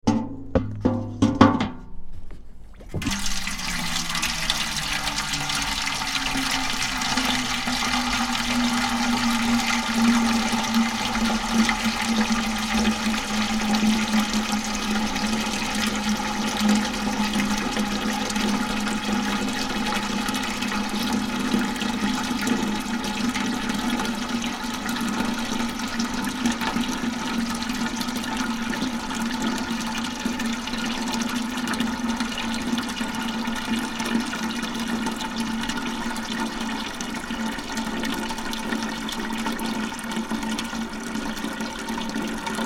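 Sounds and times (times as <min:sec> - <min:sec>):
clunk of metal watering can: 0:00.0 - 0:03.7
metal watering can filling from water butt: 0:02.7 - 0:42.6.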